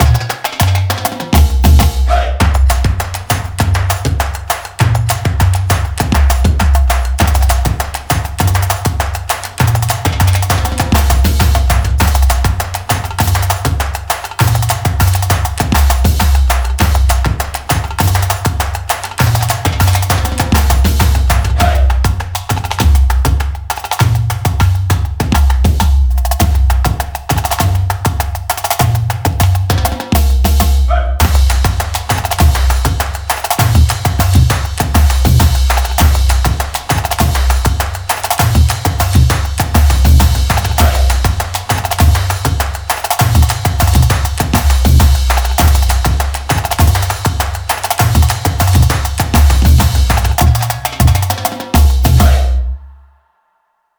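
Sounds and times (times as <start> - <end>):
drum line playing: 0.0 - 53.0.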